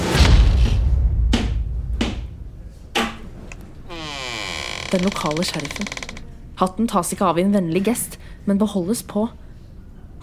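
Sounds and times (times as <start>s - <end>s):
heavy thud of a boot kicking a door: 0.0s - 3.5s
sharp knocking impacts against wood: 1.3s - 2.3s
door creaking and rasping as it swings open: 3.6s - 6.3s
speech: 4.9s - 6.0s, 6.6s - 9.4s.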